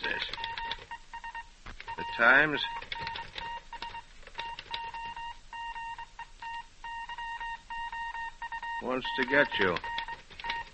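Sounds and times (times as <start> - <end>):
telephone dialing tones: 0.0 - 10.7
speech: 2.2 - 2.9, 8.8 - 9.9.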